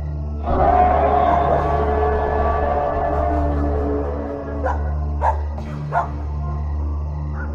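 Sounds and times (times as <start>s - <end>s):
steady low hum: 0.0s - 5.6s
chorus of many dogs barking: 0.5s - 6.6s.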